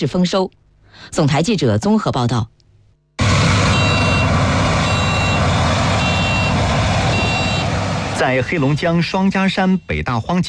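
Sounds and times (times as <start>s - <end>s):
speech: 0.0s - 2.6s, 8.2s - 10.4s
three driverless combine harvesters working in a grain field: 3.2s - 9.1s
high warning beep of driverless combine harvesters: 3.7s - 7.8s.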